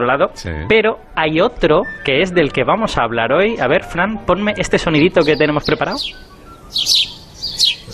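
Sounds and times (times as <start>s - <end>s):
speech: 0.0s - 7.1s
small songbird chirping: 4.5s - 7.9s.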